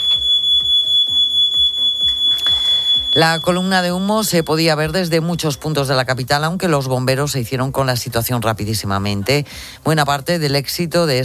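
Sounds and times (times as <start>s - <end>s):
building fire alarm steady high-pitched tone: 0.0s - 6.4s
speech: 3.2s - 11.2s.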